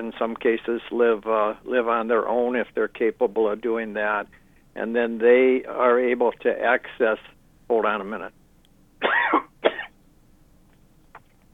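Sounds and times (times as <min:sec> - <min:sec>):
speech: 0:00.0 - 0:08.4
person coughing: 0:09.0 - 0:09.9.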